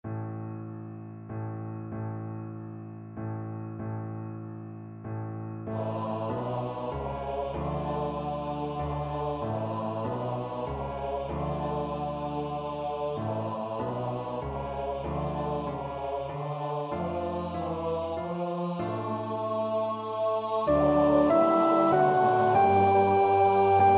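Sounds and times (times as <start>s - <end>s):
soprano singing: 5.7s - 14.5s, 15.2s - 23.9s.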